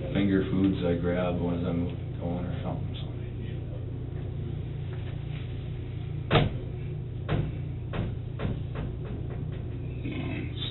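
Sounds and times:
steady low hum: 0.0 - 10.6
speech: 0.3 - 3.2
door being handled with clunks and thumps: 6.3 - 9.7.

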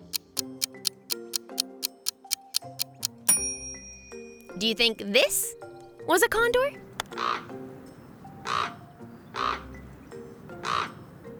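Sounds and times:
speech: 4.6 - 7.6
common raven croaking: 7.1 - 7.6, 8.4 - 9.8, 10.6 - 11.0.

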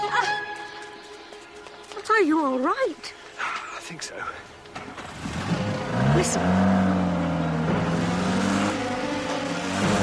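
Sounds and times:
speech: 2.2 - 4.9, 6.2 - 6.9
MG car engine revving as it drives away: 5.0 - 10.0.

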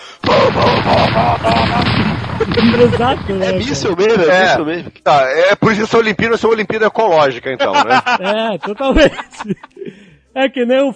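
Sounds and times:
voice imitating anti-aircraft cannons firing: 0.2 - 3.9
laughter: 0.3 - 4.0, 7.4 - 9.9
speech: 1.2 - 9.7, 10.4 - 10.9.

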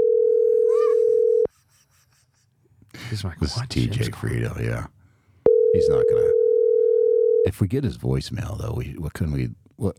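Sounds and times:
telephone dial tone of an outgoing call: 0.0 - 1.5, 5.5 - 7.4
speech: 3.1 - 5.0, 5.8 - 6.3, 7.4 - 9.9.

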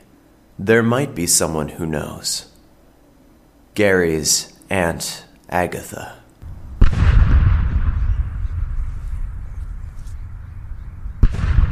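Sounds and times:
speech: 0.6 - 2.5, 3.8 - 6.2
cannon firing with a loud deep boom: 6.4 - 11.7.

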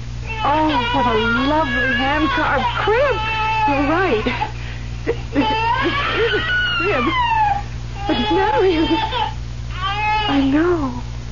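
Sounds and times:
low steady hum: 0.0 - 11.2
infant crying in a hand-carved crib in a dark room: 0.2 - 4.5, 5.1 - 10.8
speech: 0.4 - 7.3, 8.0 - 9.3, 10.3 - 11.1.

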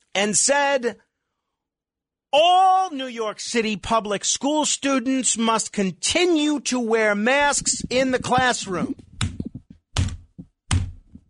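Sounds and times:
speech: 0.2 - 1.1, 2.3 - 9.1
head banging against a broadcast console: 7.5 - 11.2.

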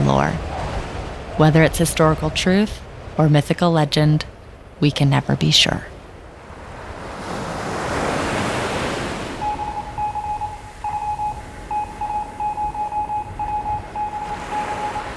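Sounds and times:
ocean surf at sea: 0.0 - 15.1
speech: 0.1 - 0.5, 1.4 - 5.9
high electronic Morse code beeps: 9.4 - 15.1.

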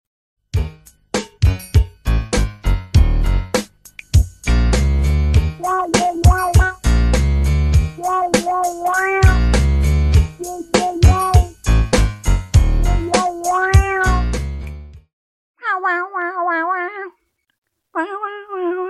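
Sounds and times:
bouncy commercial jingle from an ad for a foot odor spray: 0.6 - 14.6
meow-like calls: 5.6 - 6.8, 8.0 - 9.4, 13.1 - 14.2, 15.6 - 17.2, 18.0 - 18.8.

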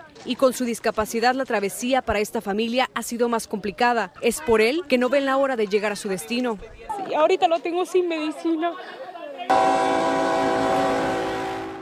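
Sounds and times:
speech: 0.2 - 10.0
murmur of voices: 3.2 - 9.7
freight train horn blast: 9.5 - 11.7.

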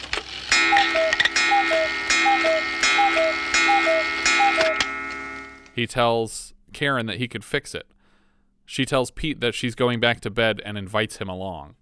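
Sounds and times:
faint sustained hum: 0.0 - 5.8
cuckoo clock two-note cuckoo call: 0.4 - 5.8
speech: 0.8 - 2.8, 5.8 - 7.9, 8.7 - 11.8.

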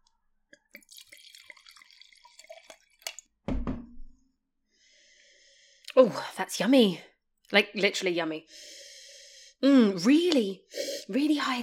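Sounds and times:
wine trickling and dripping as poured into a glass: 0.7 - 3.2
speech: 6.0 - 8.8, 9.6 - 11.6.

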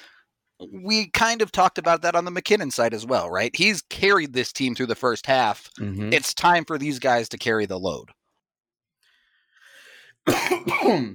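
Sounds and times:
speech: 0.6 - 8.2, 10.2 - 11.1
harsh raspy coughing fit: 10.2 - 11.1.

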